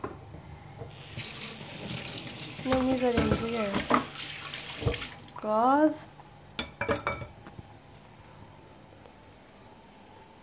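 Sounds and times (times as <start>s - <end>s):
hands washed under a running tap: 0.8s - 5.6s
speech: 2.6s - 4.3s, 5.4s - 6.1s.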